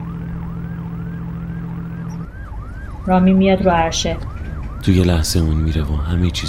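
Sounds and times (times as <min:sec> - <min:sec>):
coast patrol boat siren wailing: 0:00.0 - 0:06.4
speech: 0:03.1 - 0:06.4.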